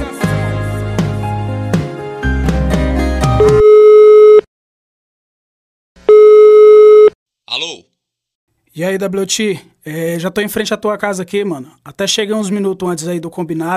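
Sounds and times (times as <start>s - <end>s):
music: 0.0s - 3.6s
telephone ringing tone after a call is placed: 3.4s - 4.5s, 6.1s - 7.2s
speech: 8.8s - 13.7s.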